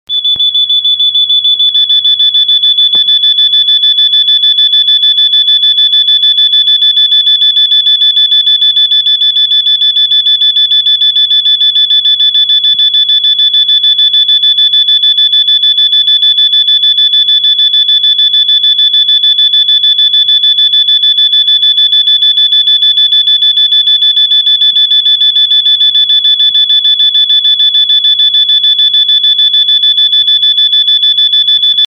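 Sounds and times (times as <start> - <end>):
exterior buzzer at maximum: 0.1 - 31.8.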